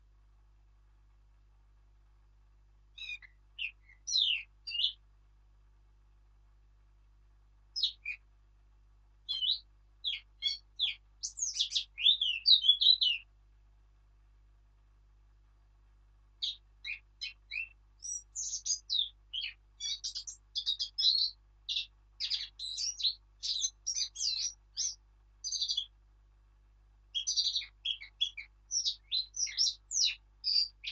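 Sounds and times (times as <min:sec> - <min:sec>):
Eurasian blackcap Sylvia atricapilla warbling song: 0:03.0 - 0:05.0, 0:07.8 - 0:08.2, 0:09.3 - 0:13.3, 0:16.4 - 0:25.9, 0:27.2 - 0:30.8.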